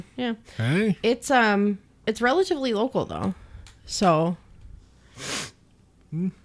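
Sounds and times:
speech: 0:00.0 - 0:04.4, 0:06.1 - 0:06.4
nasal sniff: 0:05.0 - 0:05.6.

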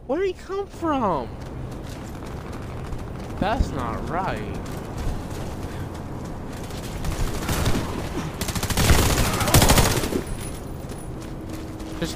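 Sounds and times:
first-person shooter video game noise: 0:00.0 - 0:12.1
speech: 0:00.1 - 0:01.5, 0:03.4 - 0:04.8, 0:12.0 - 0:12.1
rapid automatic gunfire in a first-person shooter video game: 0:06.6 - 0:10.3.

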